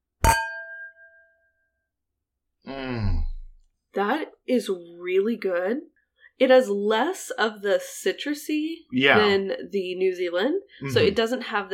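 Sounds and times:
wine glasses clinking in a toast: 0:00.2 - 0:01.3
speech: 0:04.0 - 0:11.7.

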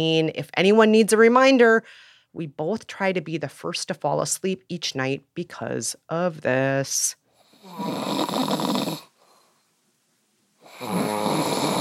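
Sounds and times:
speech: 0:00.0 - 0:08.8
man snoring loudly at night: 0:07.5 - 0:09.1, 0:10.6 - 0:11.7.

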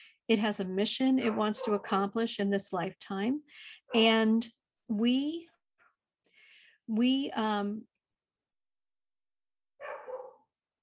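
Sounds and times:
speech: 0:00.3 - 0:05.5, 0:06.9 - 0:07.9
dog barking: 0:01.2 - 0:01.9, 0:09.8 - 0:10.5.

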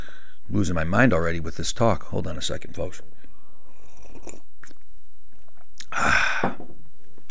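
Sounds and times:
speech: 0:00.5 - 0:03.2
slurping sip of coffee from a cup: 0:03.6 - 0:04.8.

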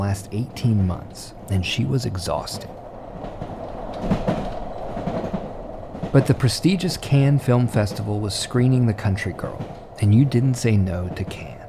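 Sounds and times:
speech: 0:00.0 - 0:03.4, 0:06.1 - 0:11.5
1955 overnight train from Paris to Nice rumbling along the tracks: 0:00.0 - 0:11.6
train wheels clickety-clack crossing rail joints: 0:00.0 - 0:11.6.

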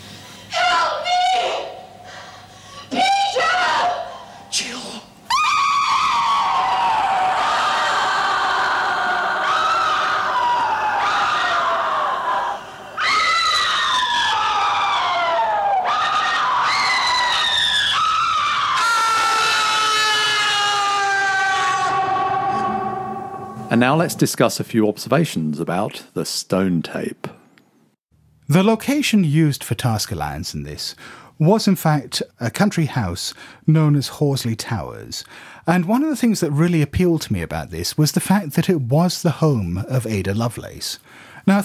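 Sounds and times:
woman's terrified close-up scream: 0:00.5 - 0:02.0, 0:02.9 - 0:23.7
speech: 0:23.8 - 0:27.3, 0:28.5 - 0:41.6.

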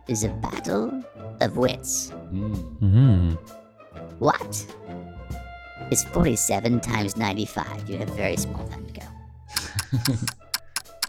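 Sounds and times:
speech: 0:00.1 - 0:03.6, 0:04.2 - 0:04.9, 0:05.9 - 0:09.2, 0:09.9 - 0:10.4
clock ticking overhead: 0:09.6 - 0:11.0.

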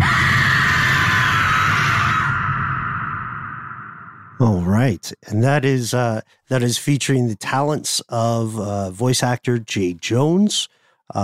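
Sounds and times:
woman screaming: 0:00.0 - 0:03.8
speech: 0:04.4 - 0:11.2.

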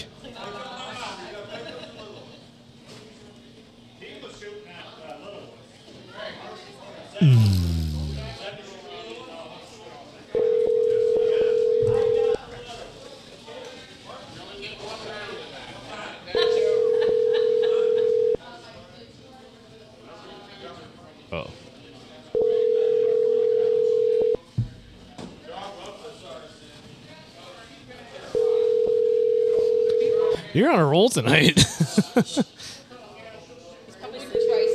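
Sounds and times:
speech: 0:07.2 - 0:07.8, 0:30.6 - 0:32.5
electronic telephone ringback tone of an outgoing call: 0:10.4 - 0:12.4, 0:16.6 - 0:18.4, 0:22.4 - 0:24.4, 0:28.4 - 0:30.3, 0:34.4 - 0:34.7
laughter: 0:31.2 - 0:32.7.

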